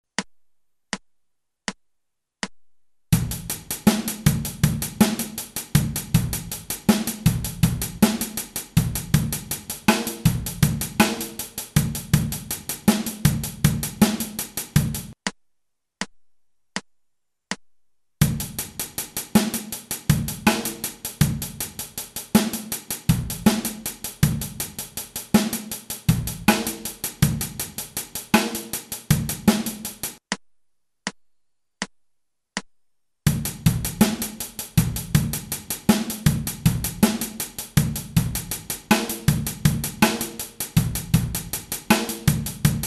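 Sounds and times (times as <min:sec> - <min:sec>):
drum backbeat: 0:03.1 - 0:15.4, 0:18.2 - 0:30.4, 0:33.3 - 0:42.8.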